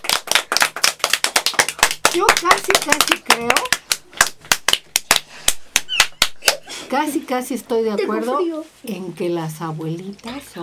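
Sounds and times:
small group applauding: 0.0s - 6.7s
speech: 2.1s - 3.8s, 6.9s - 10.6s.

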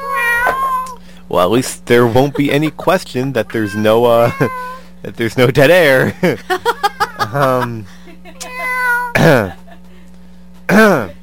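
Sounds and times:
cat meowing: 0.0s - 1.0s, 3.5s - 4.8s, 8.4s - 9.2s
speech: 1.3s - 8.0s, 9.2s - 9.6s, 10.7s - 11.2s
laughter: 1.9s - 3.5s, 6.0s - 10.1s.

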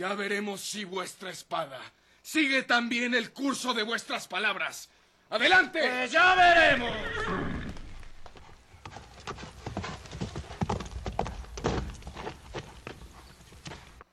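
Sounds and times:
speech: 0.0s - 7.5s
horses galloping away: 6.3s - 14.1s.

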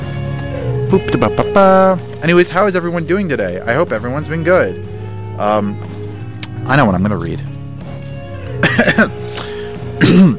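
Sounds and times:
speech: 0.9s - 6.0s, 6.6s - 7.5s, 8.9s - 9.2s, 10.0s - 10.3s
person clearing throat before reading aloud: 8.6s - 9.2s, 10.0s - 10.3s.

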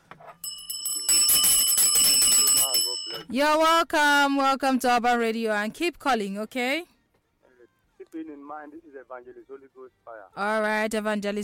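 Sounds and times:
bright continuous electric bell ringing: 0.4s - 3.3s
speech: 3.3s - 6.9s, 8.2s - 11.4s.

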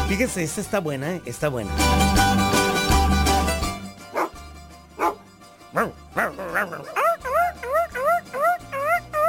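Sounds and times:
speech: 0.1s - 2.7s, 6.6s - 7.0s
dog yelping as if kicked: 4.2s - 4.4s, 5.0s - 9.2s.

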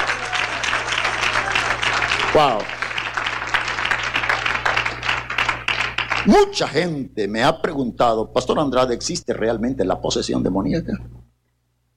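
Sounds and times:
large crowd applauding at a church service: 0.0s - 6.6s
speech: 2.4s - 2.8s, 6.2s - 11.1s.

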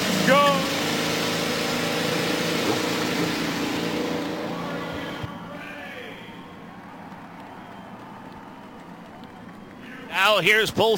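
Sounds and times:
several race car engines firing up and revving: 0.0s - 8.6s
speech: 10.4s - 10.9s.

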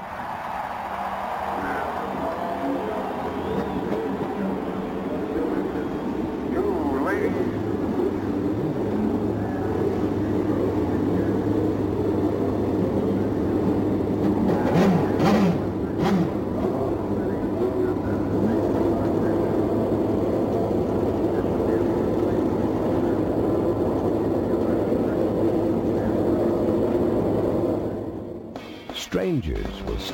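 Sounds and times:
race car engines starting and revving at the Indianapolis Motor Speedway: 0.0s - 30.1s
speech: 29.2s - 30.1s.

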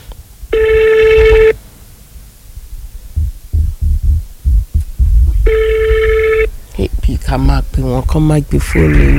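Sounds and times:
telephone ringing on a call: 0.5s - 1.6s, 5.5s - 6.5s
rumbling noise: 2.4s - 9.1s
irregular low thumps: 2.6s - 9.1s
speech: 7.3s - 9.1s.

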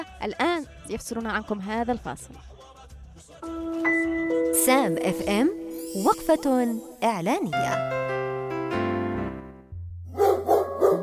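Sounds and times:
speech: 0.0s - 2.6s, 3.4s - 8.1s
sustained low musical tone and chords: 3.4s - 10.1s
dog barking: 10.1s - 11.0s.

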